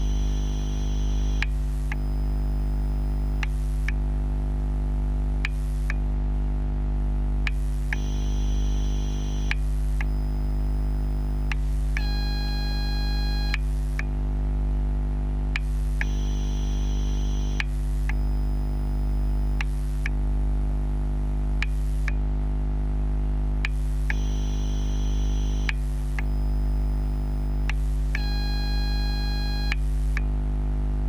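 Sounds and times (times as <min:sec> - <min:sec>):
battery charger electrical hum: 0:00.0 - 0:31.0.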